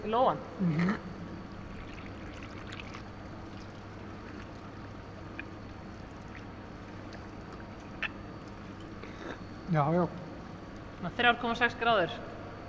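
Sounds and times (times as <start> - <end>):
speech: 0.0 - 1.1, 9.7 - 10.2, 11.0 - 12.4
water dripping: 1.7 - 9.0.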